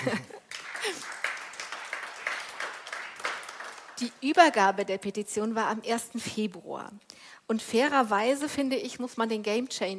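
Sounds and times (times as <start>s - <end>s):
speech: 0.0s - 1.0s, 4.0s - 9.9s
audience applause: 0.0s - 4.2s.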